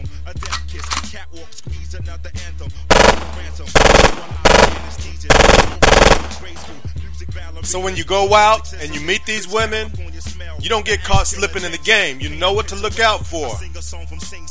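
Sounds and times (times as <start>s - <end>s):
speech: 1.2s - 14.4s
automatic gunfire fired as warning shots: 2.9s - 6.7s.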